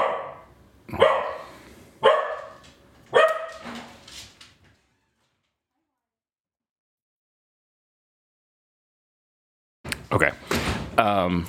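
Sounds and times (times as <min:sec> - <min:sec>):
dog barking: 0:00.0 - 0:03.8
speech: 0:10.1 - 0:11.4.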